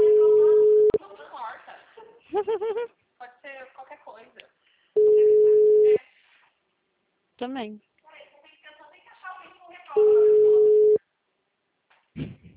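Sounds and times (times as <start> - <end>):
telephone ringback tone during a call: 0.0 - 1.0, 5.0 - 6.0, 10.0 - 11.0
laughter: 1.7 - 3.0
speech: 7.4 - 7.9.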